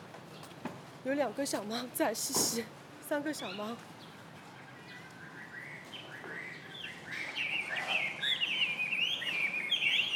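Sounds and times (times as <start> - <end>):
speech: 1.0 - 4.0
small birds chirping outdoors in an old neighborhood of Shanghai: 3.1 - 10.1.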